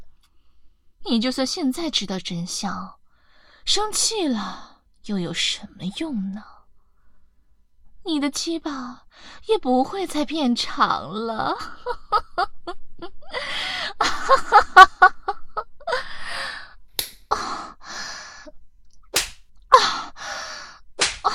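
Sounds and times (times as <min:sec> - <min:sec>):
speech: 0:01.1 - 0:03.0, 0:03.7 - 0:06.5, 0:08.1 - 0:15.2
laughter: 0:14.0 - 0:15.9
sharp hand slaps on bare buttocks: 0:17.0 - 0:17.2, 0:19.1 - 0:19.5, 0:21.0 - 0:21.3.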